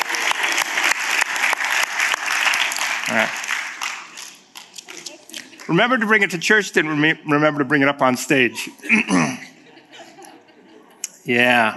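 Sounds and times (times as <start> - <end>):
crowd clapping for a child: 0.0 - 6.4
speech: 3.1 - 3.4, 5.7 - 9.4, 11.3 - 11.7
laughter: 4.9 - 7.0, 8.2 - 11.7.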